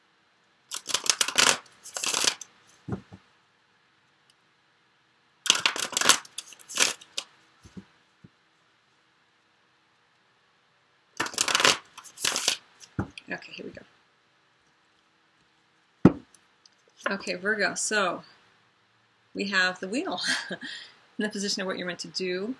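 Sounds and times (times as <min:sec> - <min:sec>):
tarot cards being shuffled and drawn for a reading: 0:00.7 - 0:03.2, 0:05.5 - 0:07.9, 0:11.2 - 0:13.2
speech: 0:13.3 - 0:14.0, 0:17.1 - 0:18.4, 0:19.4 - 0:22.5.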